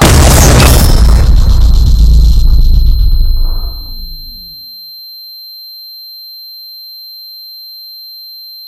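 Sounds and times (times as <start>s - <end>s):
missile explosion sound effect boom: 0.0s - 4.6s
high-pitched ringing tone: 1.0s - 8.6s.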